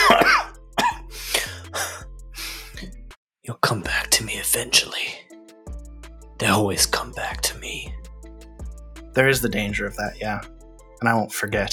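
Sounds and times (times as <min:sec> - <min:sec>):
person coughing: 0:00.0 - 0:02.0
speech: 0:04.5 - 0:05.1, 0:06.4 - 0:08.0, 0:09.2 - 0:11.7.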